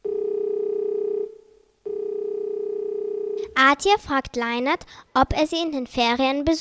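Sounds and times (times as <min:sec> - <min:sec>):
electronic ringing tone of mobile phone call to Finland: 0:00.0 - 0:03.5
speech: 0:03.6 - 0:06.5.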